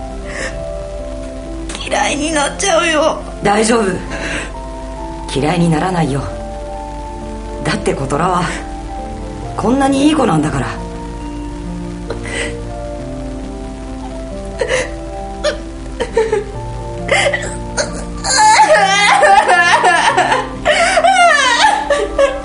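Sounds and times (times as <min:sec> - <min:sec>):
steady hiss: 0:00.0 - 0:22.4
speech: 0:01.9 - 0:04.5, 0:05.3 - 0:06.4, 0:07.7 - 0:08.7, 0:09.6 - 0:10.8
child sobbing with hiccups: 0:17.1 - 0:22.4.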